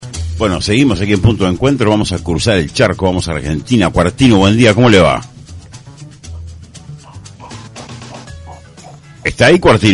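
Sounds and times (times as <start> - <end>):
speech: 0.4 - 5.3, 9.4 - 9.9
dog barking: 6.4 - 9.1.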